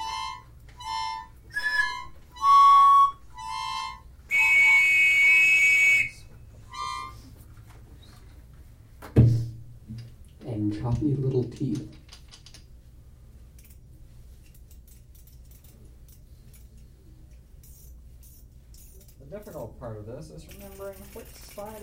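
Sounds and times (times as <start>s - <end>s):
breathy whistled notes of ocarina and pan whistle: 0.0s - 7.4s
brief knock: 9.0s - 9.5s
speech: 11.0s - 12.0s, 19.8s - 21.8s.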